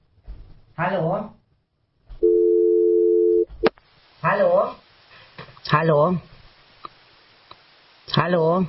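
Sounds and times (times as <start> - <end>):
speech: 0.8 - 1.3, 5.7 - 6.3, 8.1 - 8.6
electronic telephone ring of an incoming call through a phone line: 2.3 - 3.5.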